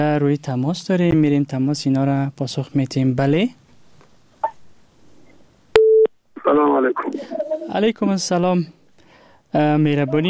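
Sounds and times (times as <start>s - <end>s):
speech: 0.0s - 3.6s, 6.5s - 8.8s, 9.5s - 10.2s
telephone busy tone after a listener's call is cut off: 5.8s - 6.1s.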